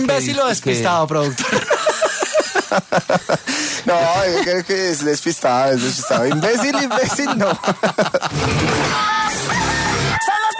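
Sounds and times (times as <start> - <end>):
speech: 0.0 - 1.7, 2.7 - 9.4
laughter: 1.2 - 10.2
rooster crowing: 9.0 - 10.5.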